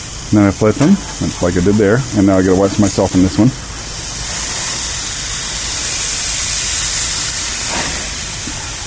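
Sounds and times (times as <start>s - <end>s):
flame flaring up and sizzling under meat on a grill: 0.1s - 8.8s
speech: 0.3s - 3.6s.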